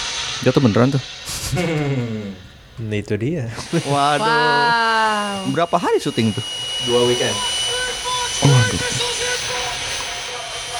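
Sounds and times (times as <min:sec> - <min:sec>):
drone propellers buzzing: 0:00.0 - 0:10.7
speech: 0:00.4 - 0:07.6, 0:08.4 - 0:09.1
laughter: 0:00.9 - 0:10.2.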